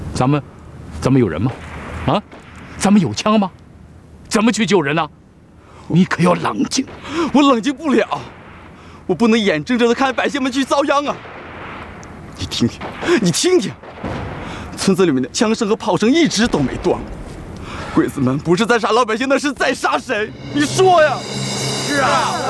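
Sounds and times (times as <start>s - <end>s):
speech: 0.2s - 3.6s, 4.3s - 5.2s, 5.9s - 8.4s, 9.1s - 11.4s, 12.4s - 14.0s, 14.8s - 17.2s, 18.0s - 22.4s
artillery shelling rumbling: 1.5s - 3.3s, 6.7s - 18.2s
gunfire: 1.7s - 2.8s, 11.1s - 15.4s, 16.3s - 18.0s
people talking urgently: 5.8s - 22.4s.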